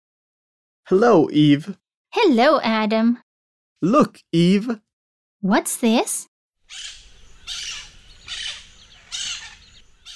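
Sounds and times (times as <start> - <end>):
speech: 0.9 - 3.2, 3.8 - 4.8, 5.4 - 7.8
big green blue and yellow parrot squawking: 6.7 - 10.1.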